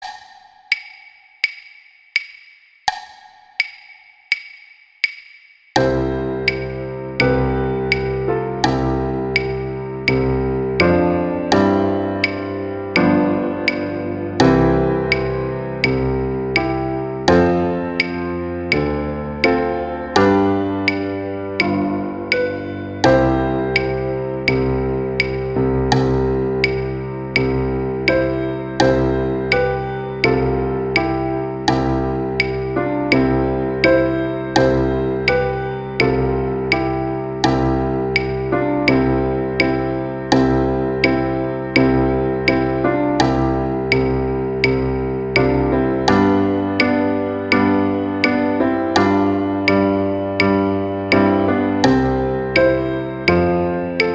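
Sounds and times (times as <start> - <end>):
Christmas carol music: 5.8 - 54.1.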